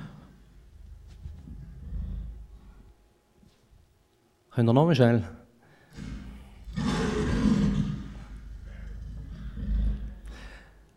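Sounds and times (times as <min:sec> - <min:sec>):
lion roaring with deep rumbling growl: 0:00.9 - 0:02.8, 0:05.9 - 0:10.3
speech: 0:04.6 - 0:05.4.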